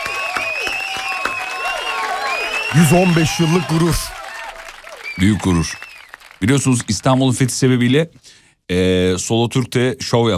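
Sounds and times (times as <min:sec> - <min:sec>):
bright whistle-like tones: 0:00.0 - 0:04.1, 0:05.0 - 0:06.1
group applause: 0:00.0 - 0:08.0
speech: 0:02.7 - 0:04.2, 0:05.2 - 0:05.8, 0:06.4 - 0:10.3.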